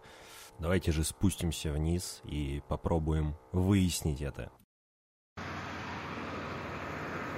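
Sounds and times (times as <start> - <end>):
speech: 0.6 - 4.6
heavy truck engines roaring at a construction site: 5.4 - 7.3.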